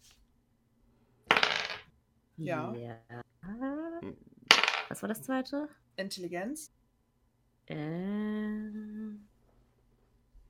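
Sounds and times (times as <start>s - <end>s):
dice tumbling and rattling: 1.3s - 1.9s, 4.5s - 4.9s
speech: 2.4s - 3.2s, 4.9s - 6.8s, 7.7s - 8.9s.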